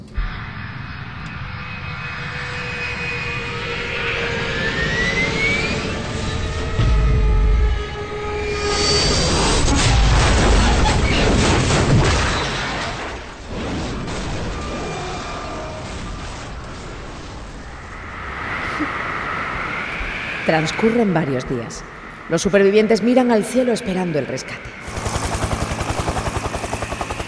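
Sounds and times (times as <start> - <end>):
jet airplane engines roaring through takeoff from Montevideo airport: 0.0 - 13.5, 14.6 - 27.2
continuous roaring rumble with grinding metallic tones after plane collision: 0.0 - 22.9
violent crashing boom from a plane collision: 6.6 - 20.0
speech: 20.6 - 24.8.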